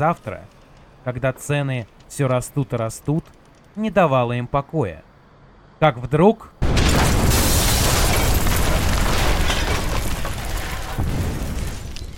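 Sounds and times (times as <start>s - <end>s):
rumbling and crackling debris: 0.0s - 4.1s, 6.6s - 12.1s
speech: 0.0s - 5.1s, 5.8s - 6.6s
loud explosion: 6.6s - 12.1s.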